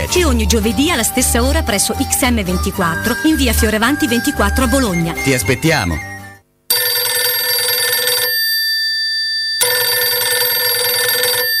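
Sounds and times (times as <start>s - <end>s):
speech: 0.1s - 6.1s
telephone bell ringing: 6.2s - 11.5s.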